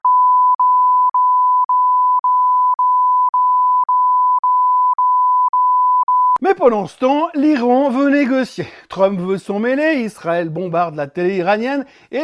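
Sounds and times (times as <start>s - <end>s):
high-pitched censorship bleep tone: 0.0s - 6.4s
speech: 6.5s - 12.2s.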